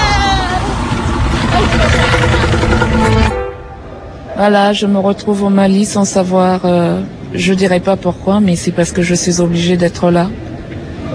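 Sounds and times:
motorcycle engine running: 0.9s - 3.6s
speech: 4.4s - 10.4s.

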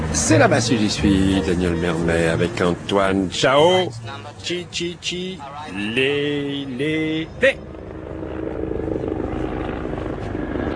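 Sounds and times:
speech: 0.2s - 7.7s
rotor thump of helicopters circling and landing: 7.6s - 10.7s.

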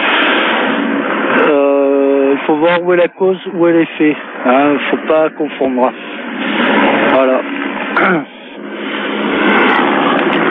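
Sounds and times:
helicopter flying over a residential area: 0.0s - 10.4s
speech: 2.5s - 6.5s, 7.2s - 8.4s.

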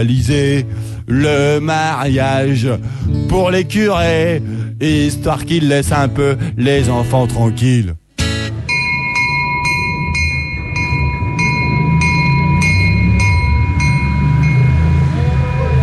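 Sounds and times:
speech: 0.0s - 8.0s
train leaving the Lourdes railway station: 8.5s - 15.8s
steady low train rumble: 8.6s - 15.8s
sustained high ringing tones: 8.6s - 15.8s.

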